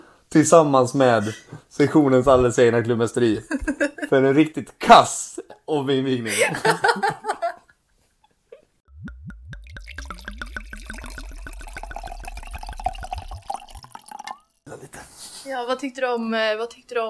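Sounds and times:
speech: 0:00.3 - 0:07.2, 0:15.7 - 0:17.0
Mionetto prosecco glugging from a bottle into a glass: 0:09.6 - 0:14.6.

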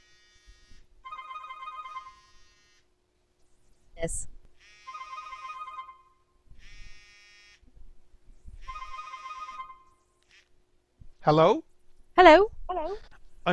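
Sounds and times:
cell phone ringtone as a call is placed: 0:01.0 - 0:02.6, 0:04.7 - 0:06.3, 0:08.6 - 0:10.0
speech: 0:04.0 - 0:04.4, 0:11.2 - 0:13.5.

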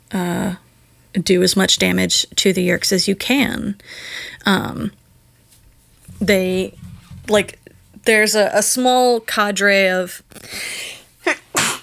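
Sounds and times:
speech: 0:01.2 - 0:05.0, 0:06.2 - 0:11.4
person sneezing: 0:10.5 - 0:11.8.

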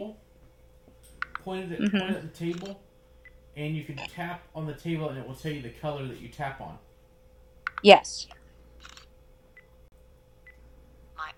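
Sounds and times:
speech: 0:01.4 - 0:02.9, 0:03.6 - 0:06.9, 0:07.8 - 0:08.4
phone camera shutter: 0:02.5 - 0:02.7, 0:08.8 - 0:09.1.

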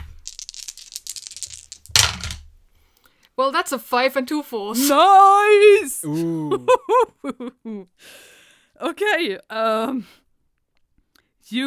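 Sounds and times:
dice rattling and clattering: 0:00.0 - 0:02.7
speech: 0:03.4 - 0:10.2, 0:11.5 - 0:11.6.

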